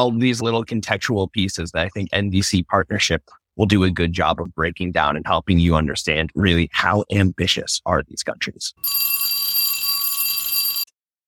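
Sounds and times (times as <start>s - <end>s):
speech: 0.0s - 9.3s
midway bell ringing with a metallic shimmer: 8.8s - 10.9s.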